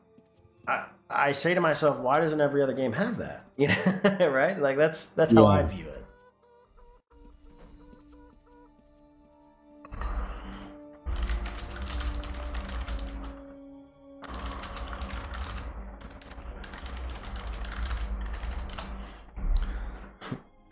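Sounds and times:
speech: 0.7s - 5.9s
laughter: 3.6s - 4.5s
rapid typing on a computer keyboard: 11.1s - 13.4s, 14.2s - 19.0s.

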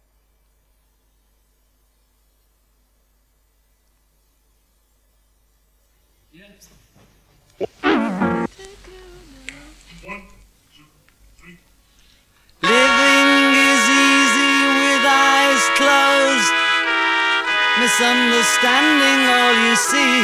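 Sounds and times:
speech: 6.4s - 7.1s, 18.0s - 20.2s
trumpets and cellos playing an orchestral arrangement: 7.8s - 8.5s, 12.6s - 20.2s.

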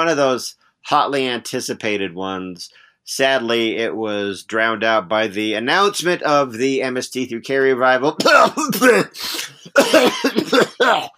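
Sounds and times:
speech: 0.0s - 11.1s
person coughing in a harsh throaty coughing fit: 8.2s - 11.1s.

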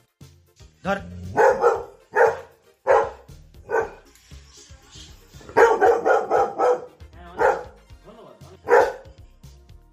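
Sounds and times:
dog barking: 1.3s - 4.1s, 5.5s - 7.8s, 8.6s - 9.2s.

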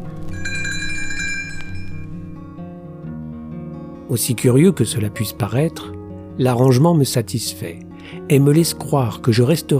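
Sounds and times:
sustained soft instrumental music backdrop: 0.0s - 9.7s
bright tinkling little bells as page-turn signal for a read-along storybook: 0.3s - 2.4s
speech: 4.1s - 9.7s.

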